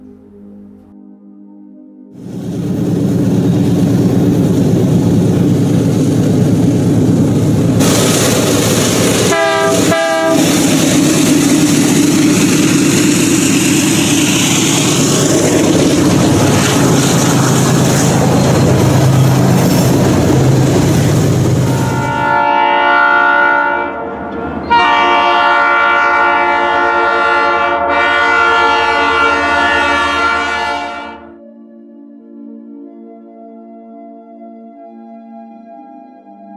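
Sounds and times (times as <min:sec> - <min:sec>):
train rumbling past at night: 0:02.2 - 0:31.3
train horn blasts: 0:09.2 - 0:10.7, 0:21.6 - 0:31.4.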